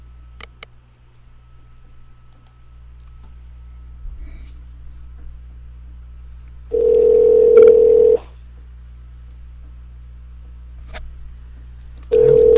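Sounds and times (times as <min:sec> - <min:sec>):
telephone dial tone: 0:06.7 - 0:08.2, 0:12.1 - 0:12.5.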